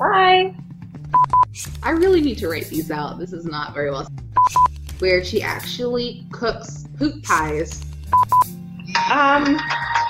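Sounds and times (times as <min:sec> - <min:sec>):
phone news alert electronic beeps: 0:01.1 - 0:01.6, 0:04.4 - 0:04.8, 0:08.1 - 0:08.6
speech: 0:01.6 - 0:07.9, 0:09.1 - 0:10.0.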